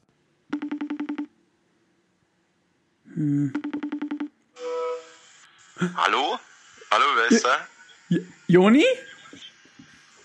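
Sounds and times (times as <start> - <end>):
electronic telephone tones as a phone number is dialed: 0.5 - 1.3
speech: 3.2 - 3.6, 5.8 - 9.1.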